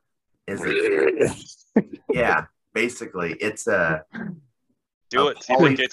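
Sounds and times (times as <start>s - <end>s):
angry turkey vocal technique polyphonic growl at the back of the tongue: 0.5s - 1.6s
speech: 0.5s - 4.4s, 5.1s - 5.9s.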